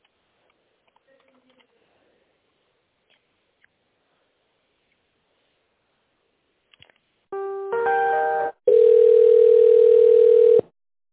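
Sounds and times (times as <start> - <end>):
loud phone ringback tone during a call transfer: 7.4 - 10.7.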